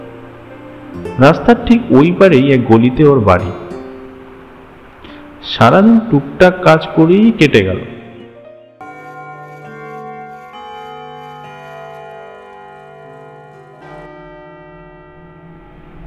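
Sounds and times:
speech: 0:00.9 - 0:03.6, 0:05.5 - 0:07.9
clock chimes striking one o'clock at night: 0:08.8 - 0:15.8.

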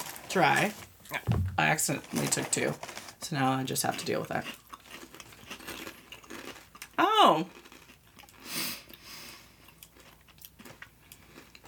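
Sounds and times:
speech: 0:00.4 - 0:04.6, 0:07.3 - 0:07.6
crunching chews of a cinnamon treat: 0:03.9 - 0:11.6
biting into a crunchy cinnamon treat: 0:04.4 - 0:09.0, 0:09.6 - 0:11.6.

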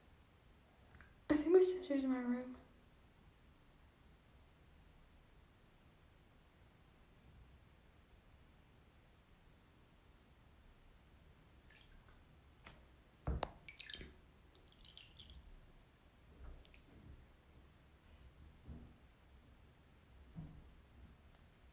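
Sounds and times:
low hiss: 0:00.0 - 0:21.7
speech: 0:01.8 - 0:02.6
water dripping in a bathtub: 0:11.6 - 0:17.5.

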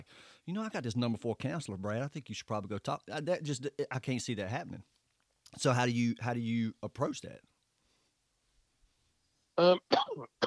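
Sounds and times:
speech: 0:00.4 - 0:07.5, 0:09.6 - 0:10.4
rough throat clearing: 0:09.7 - 0:10.4
raspy cough: 0:09.8 - 0:10.4.

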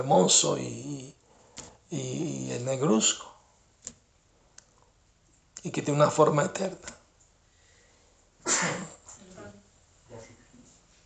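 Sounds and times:
speech: 0:00.0 - 0:01.2, 0:01.9 - 0:03.3, 0:05.6 - 0:07.0, 0:08.4 - 0:09.0
person sneezing: 0:08.4 - 0:09.1.

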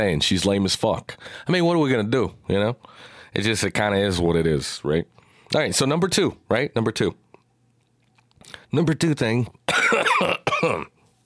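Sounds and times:
speech: 0:00.0 - 0:07.2, 0:08.4 - 0:11.0
person coughing harshly: 0:09.7 - 0:11.0.

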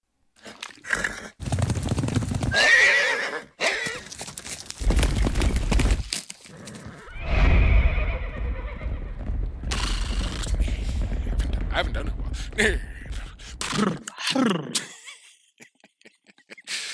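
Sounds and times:
horse hooves clip-clopping at a walk: 0:01.4 - 0:02.6, 0:03.7 - 0:07.1, 0:07.8 - 0:13.7
horse whinnying at a stables: 0:02.5 - 0:04.0, 0:06.5 - 0:10.5
speech: 0:12.6 - 0:12.9
laughter: 0:13.8 - 0:16.9.

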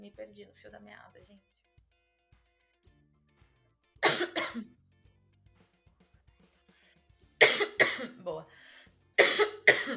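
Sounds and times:
speech: 0:00.1 - 0:01.6, 0:04.5 - 0:04.8, 0:08.2 - 0:08.6
person with an itchy throat coughing: 0:04.0 - 0:04.7, 0:07.4 - 0:08.2, 0:09.2 - 0:09.9.

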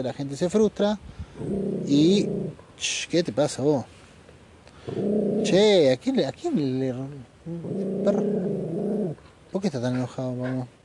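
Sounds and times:
speech: 0:00.0 - 0:04.0, 0:04.8 - 0:10.8
dog grumbling and growling: 0:01.4 - 0:02.6, 0:04.9 - 0:05.7, 0:07.4 - 0:09.2.

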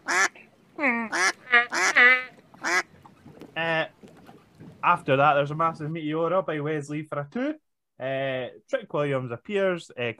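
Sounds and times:
human voice imitating nasal honking duck quacks: 0:00.1 - 0:02.8
speech: 0:04.9 - 0:10.1.

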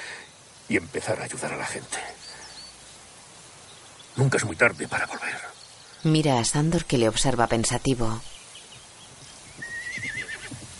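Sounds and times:
speech: 0:00.7 - 0:02.2, 0:04.2 - 0:08.4
horse whinnying: 0:09.6 - 0:10.7.

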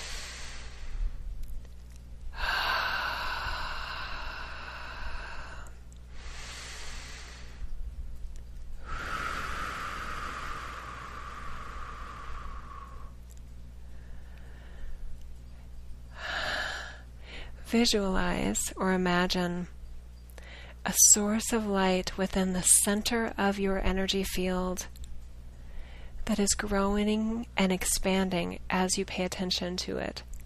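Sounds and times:
person breathing slowly and deeply during a guided relaxation exercise: 0:00.0 - 0:01.3, 0:02.3 - 0:07.8, 0:08.8 - 0:13.2, 0:13.8 - 0:15.1, 0:16.1 - 0:17.6
speech: 0:17.7 - 0:19.8, 0:20.9 - 0:25.0, 0:26.3 - 0:30.3.

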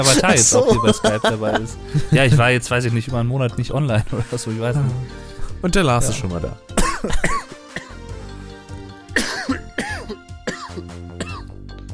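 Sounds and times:
laughter: 0:00.0 - 0:02.6
speech: 0:00.0 - 0:07.4
person clearing throat: 0:06.8 - 0:07.9, 0:09.2 - 0:11.5
person coughing: 0:06.8 - 0:08.0, 0:09.2 - 0:11.5.

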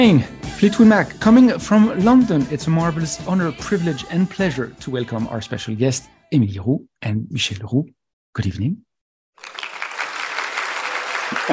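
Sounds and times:
speech: 0:00.0 - 0:09.6
crowd applause sound effect: 0:09.4 - 0:11.5.

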